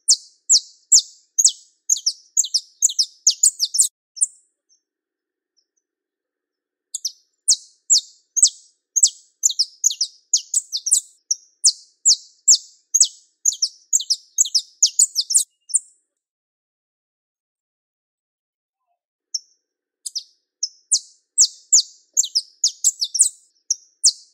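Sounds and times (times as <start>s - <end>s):
pure-bred Belgian canary singing: 0.0s - 4.9s, 6.9s - 16.1s, 19.3s - 24.3s.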